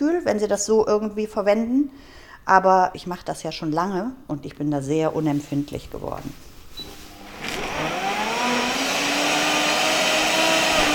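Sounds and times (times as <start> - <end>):
speech: 0.0 - 6.5
smoothie blender motor chopping leafy greens: 7.1 - 10.9.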